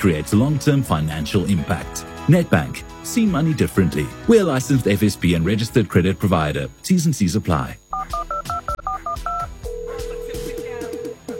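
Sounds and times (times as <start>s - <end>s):
speech: 0.0s - 8.2s
long steady electronic tone: 5.2s - 11.3s
telephone dialing tones: 8.0s - 11.3s.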